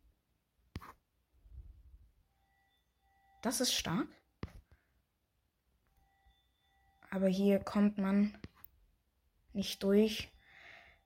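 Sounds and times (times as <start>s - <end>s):
doorbell chime with a clear bright tone: 2.3s - 4.2s, 5.9s - 8.2s, 9.6s - 11.0s
speech: 3.4s - 4.2s, 7.1s - 8.5s, 9.6s - 10.3s.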